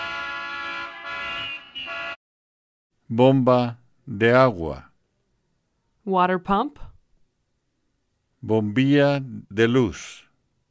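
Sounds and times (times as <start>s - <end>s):
car horn honking in a steady bright blare: 0.0s - 2.2s
speech: 3.1s - 4.9s, 6.1s - 6.9s, 8.4s - 10.2s.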